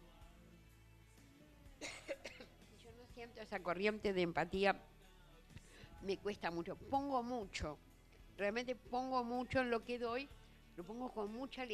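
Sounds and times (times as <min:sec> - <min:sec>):
person coughing: 0:01.8 - 0:02.6
speech: 0:03.2 - 0:04.9, 0:06.0 - 0:11.7.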